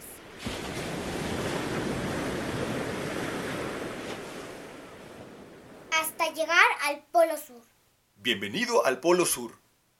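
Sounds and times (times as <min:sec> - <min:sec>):
gusty wind rushing over the microphone: 0:00.0 - 0:05.9
ocean waves roaring surf: 0:00.0 - 0:07.4
speech: 0:06.2 - 0:09.6.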